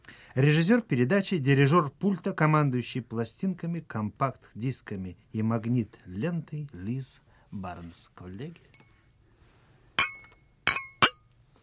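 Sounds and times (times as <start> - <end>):
speech: 0.4 - 8.8
glasses clinking in a toast: 10.0 - 11.3.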